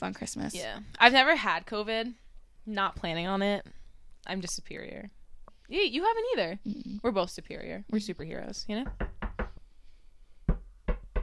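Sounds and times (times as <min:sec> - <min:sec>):
speech: 0:00.0 - 0:09.1
knocking on wood: 0:08.8 - 0:09.6, 0:10.5 - 0:11.2.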